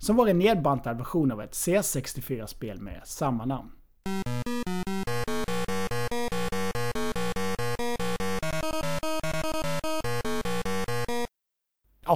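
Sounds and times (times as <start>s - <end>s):
speech: 0.0s - 4.2s
one-channel beeper title-screen game music: 4.1s - 11.3s.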